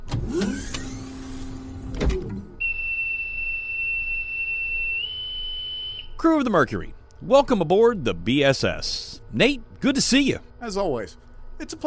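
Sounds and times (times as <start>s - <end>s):
spaceship hatch mechanical whirring after pressurization: 0.0s - 2.6s
steady high whistling tone: 2.6s - 6.2s
speech: 6.2s - 11.8s.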